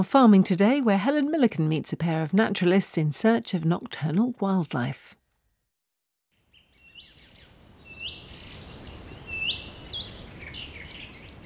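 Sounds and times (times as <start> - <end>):
speech: 0.0 - 5.2
song thrush singing outdoors at dusk: 6.5 - 11.4
steady hiss of ambience: 6.5 - 11.4.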